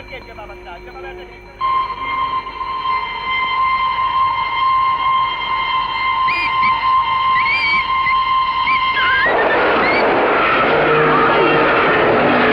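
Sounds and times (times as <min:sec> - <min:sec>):
train whistle: 0:01.6 - 0:12.5
train rumbling by: 0:08.6 - 0:12.5.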